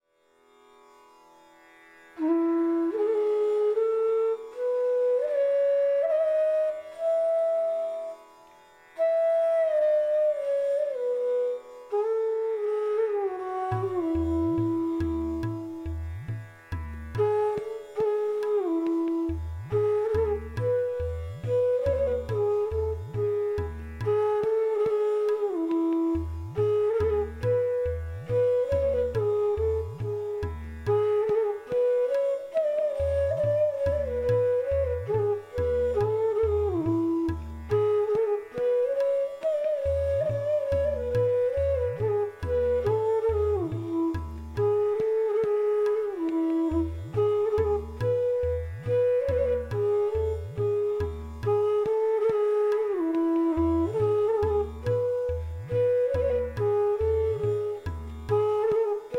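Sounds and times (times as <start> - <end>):
flute playing a raga: 0.0 - 59.1.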